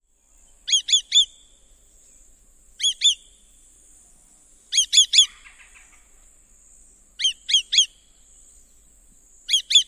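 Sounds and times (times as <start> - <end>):
kli-kli-kli bird alarm calls given in flight: 0.7 - 1.4, 2.8 - 3.2, 4.7 - 6.1, 7.2 - 8.0, 9.5 - 9.8.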